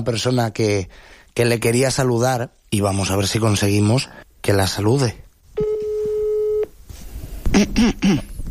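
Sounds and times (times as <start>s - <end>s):
speech: 0.0s - 5.7s, 7.6s - 8.3s
telephone dial tone: 5.6s - 6.7s.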